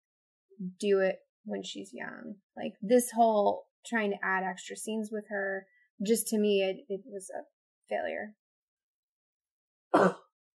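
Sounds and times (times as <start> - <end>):
speech: 0.6 - 8.4, 9.9 - 10.2
short rough cough: 10.0 - 10.3.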